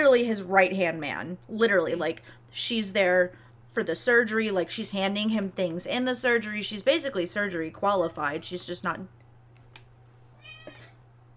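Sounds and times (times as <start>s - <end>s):
speech: 0.0s - 9.2s
steady low electrical hum: 0.0s - 11.3s
cat meowing: 10.4s - 11.0s.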